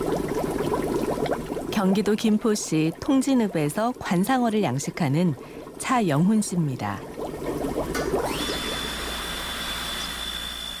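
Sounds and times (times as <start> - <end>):
water bubbling and gurgling: 0.0 - 10.2
speech: 1.8 - 7.2
aquarium air blower pump whirring with a high whine: 7.8 - 10.7.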